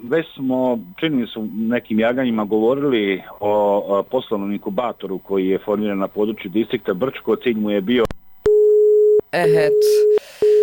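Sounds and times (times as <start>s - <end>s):
speech: 0.0s - 8.1s, 9.3s - 10.4s
telephone busy signal from a failed call: 8.5s - 10.6s
garbled voice over a telephone line: 9.4s - 10.6s.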